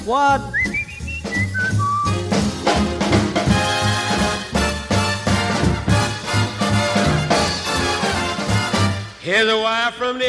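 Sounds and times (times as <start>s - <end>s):
speech: 0.0s - 0.7s, 9.3s - 10.2s
full band playing loud rhythmic music: 0.0s - 9.2s
man whistling birdlike notes: 0.4s - 2.3s.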